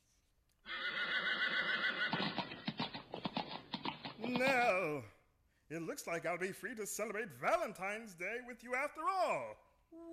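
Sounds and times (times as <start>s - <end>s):
horse neighing: 0.6s - 3.0s
horse hooves clip-clopping: 1.7s - 5.1s
speech: 4.3s - 10.1s.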